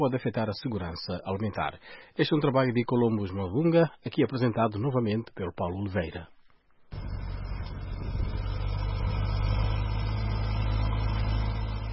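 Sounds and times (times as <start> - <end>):
speech: 0.0 - 6.4
tractor engine working the land: 6.9 - 11.9.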